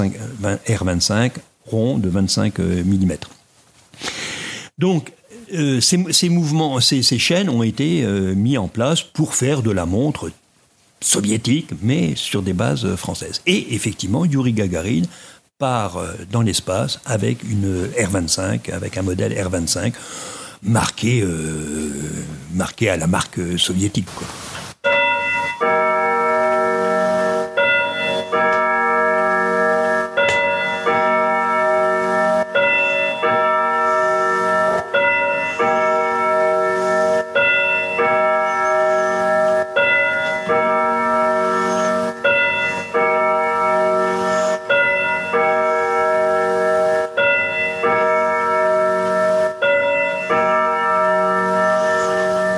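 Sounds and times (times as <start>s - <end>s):
speech: 0.0s - 3.4s, 4.0s - 4.2s, 4.8s - 10.4s, 11.0s - 25.0s
pendulum clock playing a bell chime melody: 24.8s - 52.5s.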